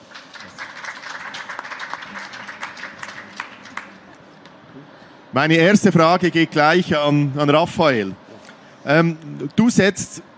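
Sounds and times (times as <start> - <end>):
room full of people applauding: 0.0 - 4.3
speech: 5.3 - 8.2, 8.8 - 10.3.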